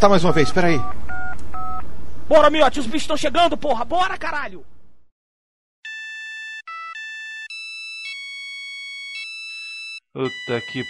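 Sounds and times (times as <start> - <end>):
speech: 0.0 - 1.2, 2.3 - 4.8, 10.1 - 10.8
phone ringtone for an incoming call, bright electronic melody: 0.3 - 1.8, 5.8 - 10.8.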